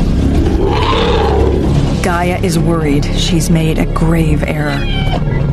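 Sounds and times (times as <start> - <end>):
elephants trumpeting at hyenas: 0.2 - 1.9
speech: 2.2 - 5.5.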